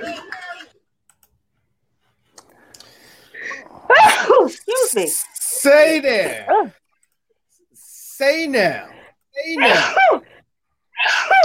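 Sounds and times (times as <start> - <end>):
speech: 4.9 - 6.8, 8.2 - 10.2
sneeze: 9.6 - 10.2, 11.0 - 11.4.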